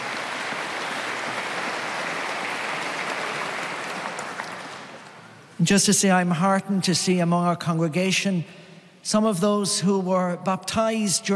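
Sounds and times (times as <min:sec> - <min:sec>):
large crowd applauding in a big space: 0:00.0 - 0:05.5
speech: 0:05.6 - 0:11.3.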